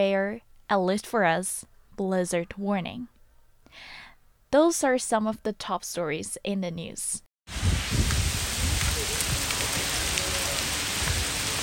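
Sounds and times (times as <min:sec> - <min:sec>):
speech: 0:00.0 - 0:03.1, 0:03.7 - 0:07.6
hail falling outside a studio: 0:07.5 - 0:11.6.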